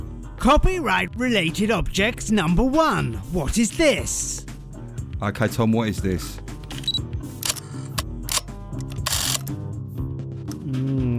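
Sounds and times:
speech: 0:00.4 - 0:04.5, 0:05.2 - 0:06.5
camera shutter clicking: 0:06.7 - 0:09.6.

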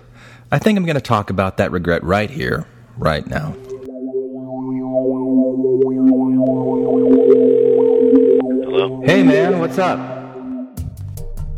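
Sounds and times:
speech: 0:00.5 - 0:03.7, 0:09.0 - 0:10.2
telephone ringing tone before call connects: 0:03.4 - 0:10.8.

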